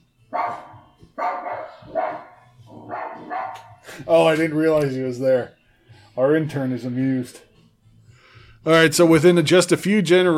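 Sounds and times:
recorded dog barking played from a smart speaker: 0:00.3 - 0:03.8
speech: 0:04.0 - 0:05.6, 0:06.2 - 0:07.5, 0:08.6 - 0:10.3.

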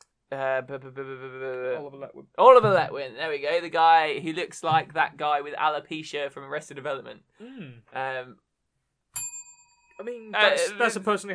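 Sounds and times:
speech: 0:00.3 - 0:08.4, 0:10.0 - 0:11.3
short vocal sound: 0:07.4 - 0:07.9
small bell ding: 0:09.2 - 0:10.0.

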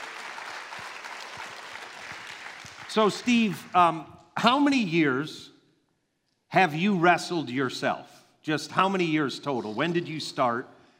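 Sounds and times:
crowd at a morning event applauding: 0:00.0 - 0:04.0
speech: 0:02.9 - 0:05.5, 0:06.5 - 0:10.8.

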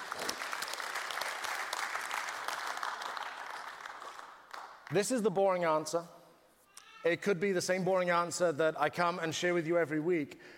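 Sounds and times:
audience applause: 0:00.0 - 0:04.8
speech: 0:04.9 - 0:06.2, 0:07.0 - 0:10.5.

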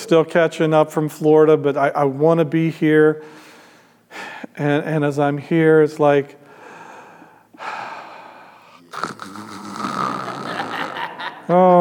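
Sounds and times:
speech: 0:00.1 - 0:03.4, 0:04.1 - 0:06.4, 0:11.5 - 0:11.7
person snoring: 0:07.6 - 0:11.3
laughter: 0:10.0 - 0:11.7.

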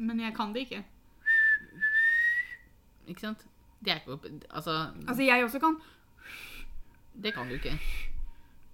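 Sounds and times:
speech: 0:00.0 - 0:01.0, 0:03.1 - 0:06.6, 0:07.2 - 0:08.1
breathy failed whistle attempts with rushing air and a faint wavering tone: 0:01.2 - 0:02.7, 0:06.2 - 0:08.2.

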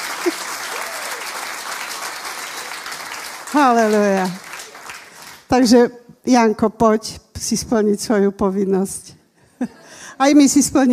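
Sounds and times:
church audience applauding: 0:00.0 - 0:05.5
speech: 0:03.5 - 0:04.4, 0:05.5 - 0:10.9.

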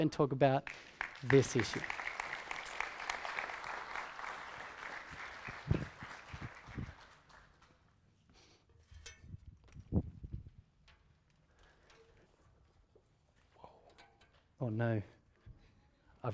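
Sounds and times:
speech: 0:00.0 - 0:02.1, 0:14.8 - 0:15.2
audience applauding: 0:00.7 - 0:07.8.

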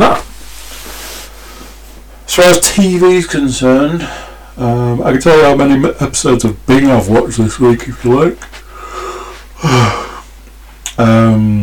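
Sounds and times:
speech: 0:02.3 - 0:08.5
person yawning into a microphone: 0:08.9 - 0:10.2.

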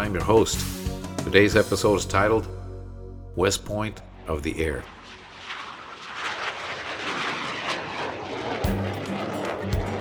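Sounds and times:
speech: 0:00.0 - 0:02.6, 0:03.4 - 0:05.0
T-6 Texan II propeller trainer plane flying overhead: 0:03.4 - 0:10.0.

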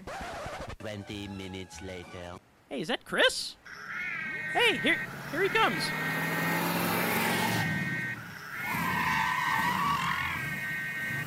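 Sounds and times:
speech: 0:00.8 - 0:03.8, 0:04.5 - 0:06.3
car skidding to a stop with tire screech: 0:03.7 - 0:11.2.

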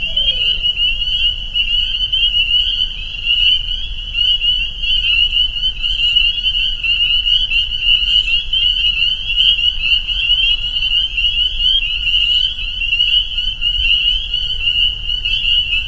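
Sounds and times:
faint low background rumble: 0:00.0 - 0:03.1
spring peeper chorus at a pond in northern Vermont: 0:00.0 - 0:15.8.

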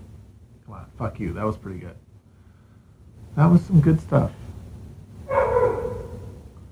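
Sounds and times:
low steady rumble: 0:00.0 - 0:06.7
speech: 0:00.8 - 0:02.1, 0:03.4 - 0:04.4
dog barking: 0:05.2 - 0:06.6.

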